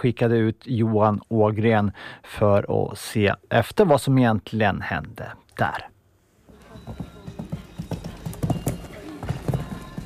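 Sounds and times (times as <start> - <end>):
speech: 0.0 - 5.9
horse hooves clip-clopping at Åland show jumping championships: 6.5 - 10.0.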